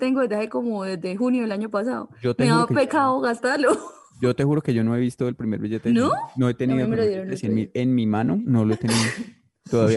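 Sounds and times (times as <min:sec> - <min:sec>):
speech: 0:00.0 - 0:09.9
short laugh: 0:08.6 - 0:09.3
single quick sneeze: 0:08.8 - 0:09.3.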